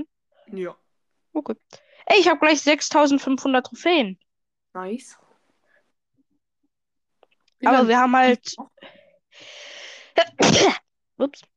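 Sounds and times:
speech: 0.0s - 5.2s, 7.6s - 9.6s, 10.2s - 11.5s
loud sharp sneeze: 10.2s - 10.8s.

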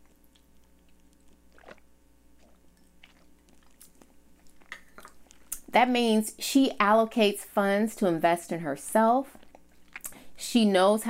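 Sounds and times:
person sipping a drink: 0.0s - 5.6s, 9.4s - 10.2s
wet mouth clicks: 0.0s - 5.7s, 9.3s - 10.2s
low hum: 0.0s - 11.0s
soft swallowing: 0.1s - 5.6s
speech: 5.8s - 9.4s, 10.5s - 11.0s.

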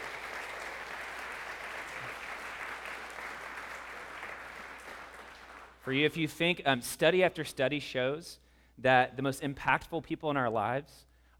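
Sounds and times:
audience applause: 0.0s - 5.8s
speech: 5.8s - 11.3s.

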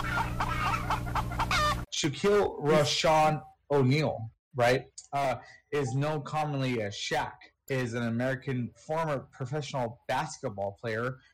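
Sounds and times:
chicken clucking: 0.0s - 1.9s
steady low hum: 0.0s - 8.7s
speech: 2.0s - 11.3s.

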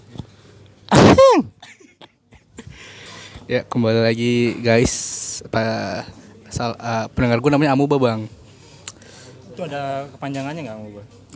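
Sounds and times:
person coughing: 0.9s - 1.5s
speech: 3.5s - 8.4s, 9.6s - 11.3s.

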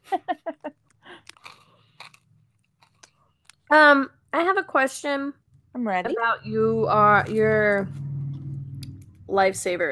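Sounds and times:
bitten-off piece of red hard candy cane being chewed: 0.8s - 3.6s
speech: 3.7s - 8.0s, 9.3s - 9.9s.

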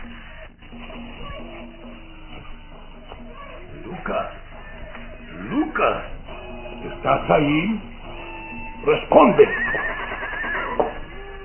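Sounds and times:
speech: 5.8s - 6.1s, 7.0s - 7.9s, 8.8s - 9.7s
horses whinnying nervously: 9.3s - 11.4s.

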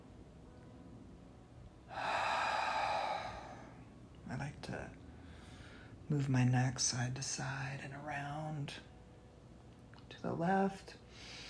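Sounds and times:
deep breath during a relaxation and stretching exercise: 1.9s - 3.9s, 5.1s - 6.0s, 11.1s - 11.4s
speech: 6.1s - 8.9s, 10.2s - 11.4s.

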